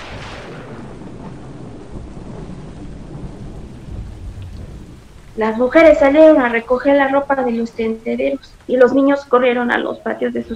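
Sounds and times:
heavy thunderstorm rain pounding on house roofs: 0.0s - 10.5s
low thunder rumbling: 0.0s - 10.5s
speech: 5.4s - 10.5s.

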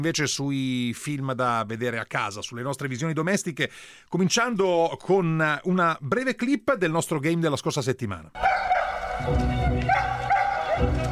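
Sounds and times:
speech: 0.0s - 10.2s
dog barking and yipping: 8.4s - 11.1s.

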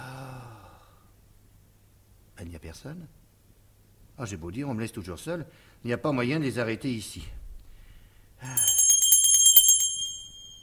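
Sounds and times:
speech: 2.4s - 3.2s, 4.2s - 7.4s, 8.4s - 8.7s
small hand bell ringing: 8.4s - 10.6s.

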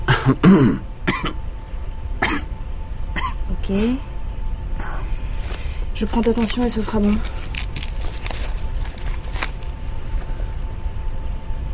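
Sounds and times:
patient clearing the throat: 0.0s - 1.4s
patient coughing during a medical examination: 0.0s - 1.4s, 2.2s - 2.5s, 3.2s - 3.4s
faint steady hum: 0.0s - 11.7s
speech: 0.2s - 0.9s, 3.7s - 4.1s, 6.0s - 7.4s.

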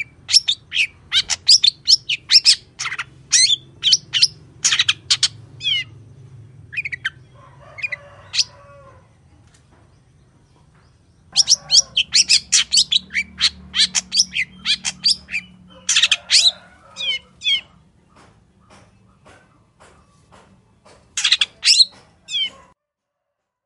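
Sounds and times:
wild long-tailed shrike singing in the morning: 0.0s - 8.6s, 11.2s - 18.9s.

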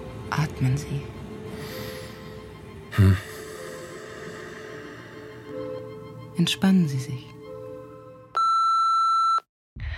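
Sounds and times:
speech: 0.3s - 1.2s, 3.0s - 3.3s, 6.4s - 7.4s
telephone beeping with a high electronic tone: 8.4s - 9.4s.

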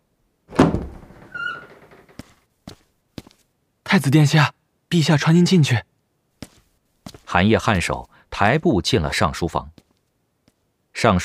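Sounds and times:
imperial palace study door opening with heavy thunk: 0.5s - 2.2s
high squeak: 1.2s - 2.0s
speech: 3.9s - 5.9s, 7.4s - 9.8s, 11.0s - 11.2s.

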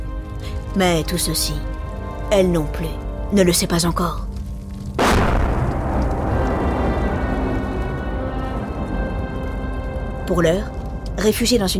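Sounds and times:
speech: 0.7s - 4.3s, 10.3s - 11.7s
bomb exploding overhead during a wartime air raid, heard from a cellar: 5.0s - 9.0s
long heavy rumbling roar after a bomb blast: 5.0s - 10.8s.

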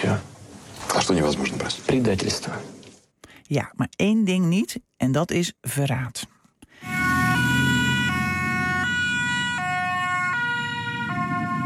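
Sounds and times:
speech: 1.0s - 2.8s, 3.5s - 6.9s
Dutch ambulance two-tone siren during a hot-weather Ironman race in Hoorn: 6.8s - 11.6s
low rumble of vehicle noise: 6.8s - 11.6s.

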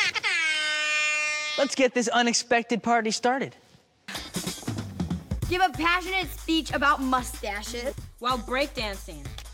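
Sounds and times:
party air horn blasts: 0.2s - 1.9s
speech: 1.6s - 3.6s, 5.5s - 9.5s.

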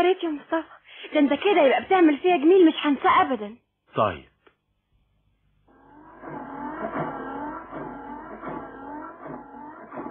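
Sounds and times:
speech: 0.0s - 4.3s
freshly repaired car engine revving: 5.7s - 10.1s.

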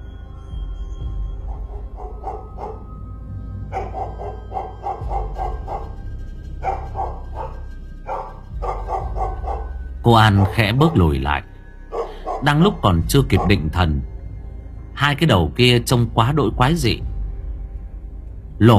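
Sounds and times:
steady low drone: 0.0s - 14.9s
fat dog lunging and barking fiercely: 1.5s - 3.0s, 3.7s - 13.8s
speech: 10.1s - 11.5s, 12.4s - 14.1s, 15.0s - 17.1s, 18.6s - 18.7s.

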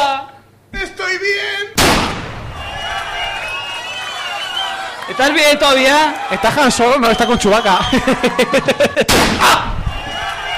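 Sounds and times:
gunshots in a shootout: 1.8s - 2.6s, 9.1s - 9.7s
loud sharp blast: 1.8s - 3.0s, 9.1s - 9.8s
laughter: 2.7s - 10.5s
speech: 5.2s - 9.8s.

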